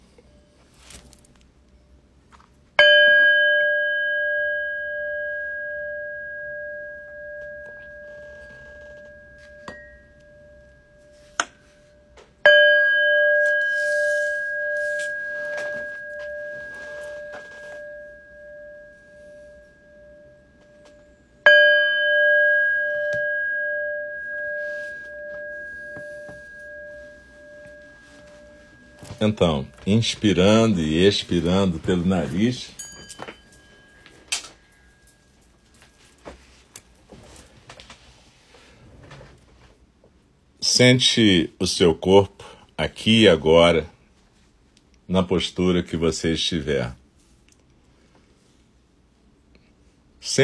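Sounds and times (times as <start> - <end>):
meditation bell ringing: 0.0 - 37.6
speech: 29.2 - 32.8, 40.8 - 44.0, 45.1 - 47.0.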